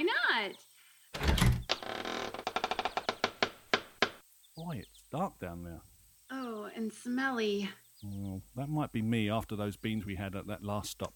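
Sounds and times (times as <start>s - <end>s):
heavy wooden trap door creaking and thudding open: 1.2s - 4.2s
sharp clacks and knocks: 2.4s - 4.2s
speech: 4.8s - 5.9s, 6.8s - 11.1s.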